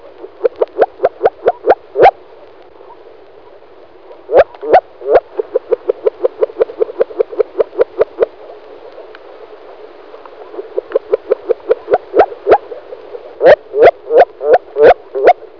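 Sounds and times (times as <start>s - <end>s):
Rana arvalis calling: 0.2s - 2.2s, 4.3s - 8.3s, 10.4s - 15.4s.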